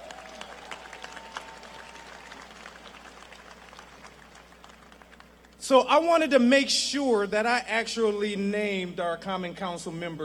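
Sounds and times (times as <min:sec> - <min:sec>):
crowd applauding in an open outdoor space: 0:00.0 - 0:05.5
speech: 0:05.7 - 0:10.2.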